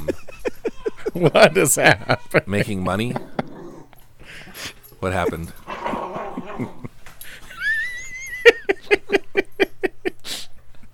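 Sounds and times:
laughter: 0:00.0 - 0:03.6, 0:05.2 - 0:10.9
speech: 0:01.2 - 0:03.3, 0:04.5 - 0:05.6
dog growling in grunting pulses: 0:03.1 - 0:04.0, 0:05.6 - 0:06.9.

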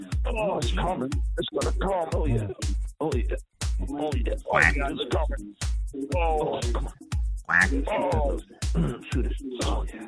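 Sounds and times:
speech: 0:00.0 - 0:10.0
duck quacking: 0:04.5 - 0:04.9, 0:07.5 - 0:08.0.

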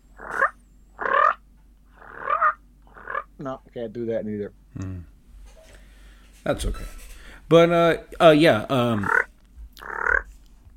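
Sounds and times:
loud rolling turkey purr blown on a four-reed mouth call: 0:00.2 - 0:03.3, 0:09.0 - 0:10.3
speech: 0:03.4 - 0:05.1, 0:06.4 - 0:09.2.

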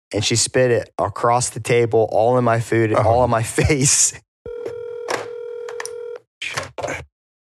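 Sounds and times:
speech: 0:00.1 - 0:04.3
phone electronic ringtone with an incoming call: 0:04.5 - 0:06.2.

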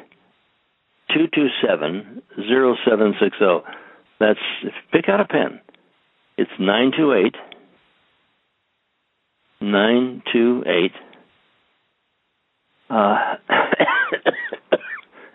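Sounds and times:
speech: 0:01.2 - 0:05.6, 0:06.4 - 0:07.5, 0:09.6 - 0:11.1, 0:12.9 - 0:13.9
person coughing: 0:13.0 - 0:15.3.

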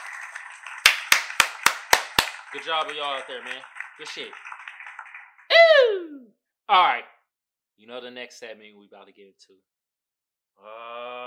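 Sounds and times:
hand clapping: 0:00.0 - 0:05.6
speech: 0:02.5 - 0:04.5, 0:06.7 - 0:07.2, 0:07.8 - 0:09.7, 0:10.6 - 0:11.2.

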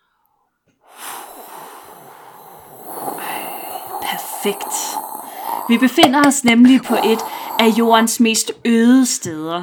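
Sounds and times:
person blowing a breathy whooshing hiss imitating wind across steppes: 0:00.9 - 0:08.2
speech: 0:04.4 - 0:05.1, 0:05.7 - 0:09.6.

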